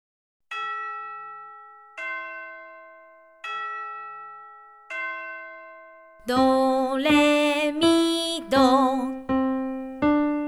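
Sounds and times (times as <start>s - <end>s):
bells ringing a short chime melody: 0.5s - 6.7s
speech: 6.2s - 9.2s.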